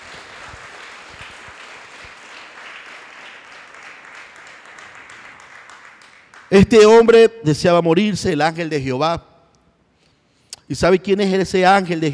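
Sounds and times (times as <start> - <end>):
congregation applauding during a church service: 0.0 - 7.0
speech: 6.5 - 9.3, 10.7 - 12.1.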